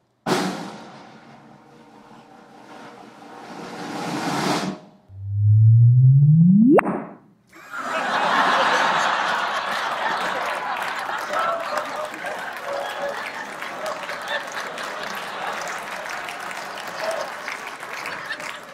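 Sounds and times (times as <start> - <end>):
synthetic chirp rendering gravitational waves from two black holes colliding: 5.1 - 7.3
laughter: 7.6 - 16.3, 17.8 - 18.7.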